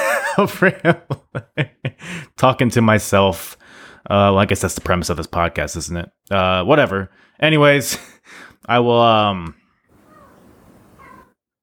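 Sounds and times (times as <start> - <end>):
laughter: 0.0 - 2.0
speech: 0.4 - 9.6
cat meowing growly while fighting off a bug: 10.0 - 11.4.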